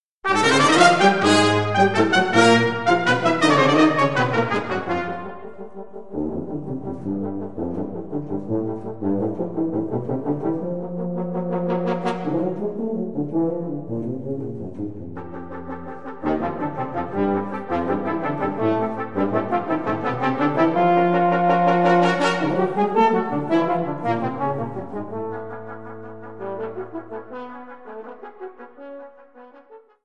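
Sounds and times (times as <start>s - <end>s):
brass music: 0.2s - 30.0s.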